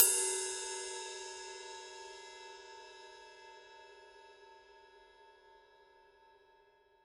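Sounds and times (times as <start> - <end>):
20-inch rock ride cymbal struck on body: 0.0 - 5.6.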